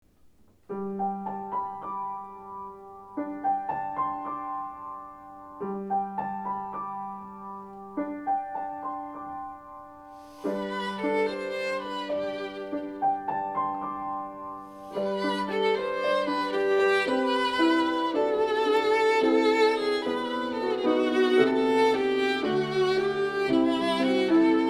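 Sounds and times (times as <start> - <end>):
piano: 0.1 - 24.6
violin: 10.2 - 24.6.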